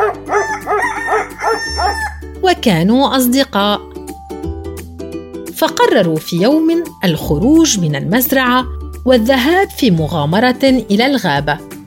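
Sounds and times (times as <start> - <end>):
rooster crowing: 0.0 - 2.3
speech: 2.4 - 3.9, 5.6 - 11.7.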